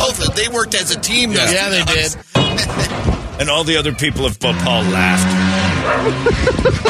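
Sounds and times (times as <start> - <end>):
speech: 0.4 - 6.8
laughter: 1.1 - 3.0, 5.9 - 6.8
street dog barking and yipping: 5.8 - 6.2.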